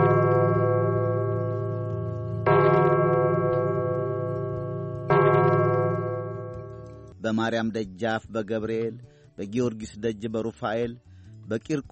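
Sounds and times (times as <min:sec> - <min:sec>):
church bell tolling the final bell: 0:00.0 - 0:07.2
speech: 0:07.2 - 0:11.9.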